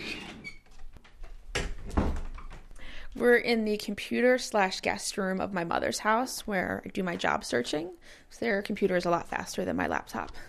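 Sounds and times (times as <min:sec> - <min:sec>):
old door creaking open: 0:00.0 - 0:02.7
old door clunks and rattles: 0:01.1 - 0:02.7
speech: 0:03.2 - 0:10.4.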